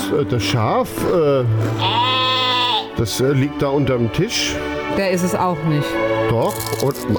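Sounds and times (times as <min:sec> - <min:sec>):
speech: 0:00.1 - 0:02.2, 0:03.0 - 0:07.1
sheep bleating: 0:01.8 - 0:03.0.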